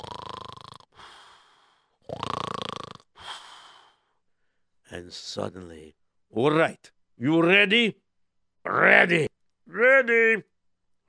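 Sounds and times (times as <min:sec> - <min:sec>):
person imitating snoring: 0:00.0 - 0:01.4, 0:02.0 - 0:03.5
speech: 0:04.9 - 0:08.0, 0:08.6 - 0:10.5.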